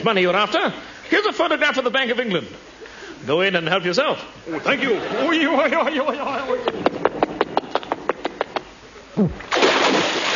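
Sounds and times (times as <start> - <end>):
speech: 0.0 - 7.0, 9.2 - 9.4
laughter: 4.4 - 7.3
man splashing into the sea: 9.5 - 10.3.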